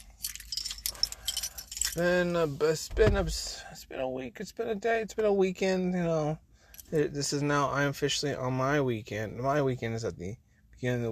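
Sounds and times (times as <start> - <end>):
keys jangling: 0.0 - 2.1
speech: 2.0 - 11.0.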